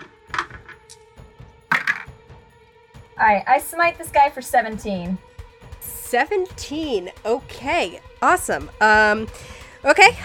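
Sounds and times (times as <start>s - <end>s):
dice clattering across a hard tabletop: 1.7s - 2.1s
speech: 3.2s - 5.3s, 6.1s - 10.2s.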